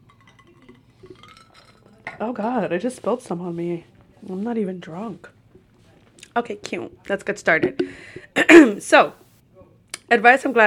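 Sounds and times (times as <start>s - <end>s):
ice cubes clinking in a glass of wine: 0.0s - 2.0s
speech: 2.2s - 5.4s, 6.4s - 9.2s, 10.1s - 10.6s.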